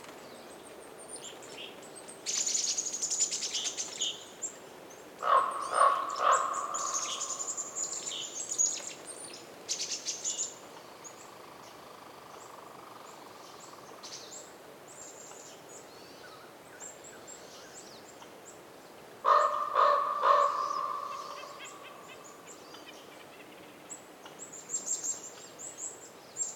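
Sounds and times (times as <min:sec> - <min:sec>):
soft background hiss: 0:00.0 - 0:26.5
wind in a winter forest in Canada: 0:00.0 - 0:26.5
small birds chirping in a winter forest in Canada: 0:00.2 - 0:18.6, 0:19.3 - 0:26.5
raven giving hoarse calls in a winter forest in Canada: 0:05.2 - 0:08.2, 0:19.2 - 0:22.5.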